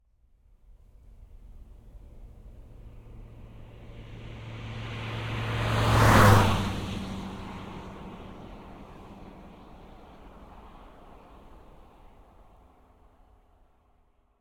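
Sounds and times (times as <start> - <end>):
Toyota RAV4 II 2.0 16V diesel car passing by at 90 kmph: 1.6 - 12.9.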